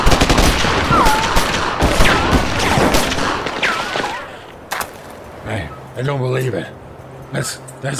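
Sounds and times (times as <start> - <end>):
rapid gunfire from several weapons in a shootout: 0.0 - 4.1
whining bullet ricochets: 0.0 - 4.5
speech: 6.0 - 7.9.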